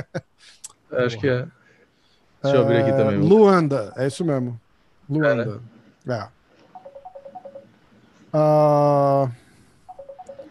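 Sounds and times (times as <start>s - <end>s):
speech: 0.0s - 1.6s, 2.4s - 6.4s, 8.3s - 9.4s
incoming telephone call buzzing ring: 6.7s - 7.7s, 9.9s - 10.5s
short telephone beeps of incoming call: 9.9s - 10.5s.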